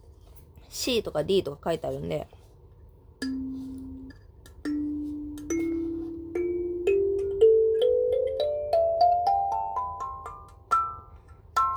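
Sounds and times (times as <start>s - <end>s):
speech: 0.7s - 2.4s
plucked radially arranged instrument keys in a rising scale: 3.2s - 10.5s.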